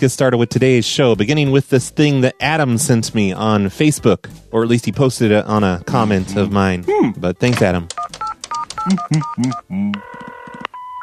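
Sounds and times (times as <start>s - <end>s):
speech: 0.0s - 8.2s, 8.8s - 10.2s
telephone touch-tone dialing beeps: 7.9s - 11.0s.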